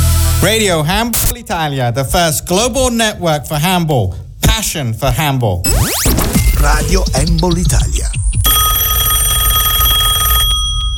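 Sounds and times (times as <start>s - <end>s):
speech: 0.4s - 8.2s
telephone ringing with a continuous electric bell: 8.4s - 10.9s.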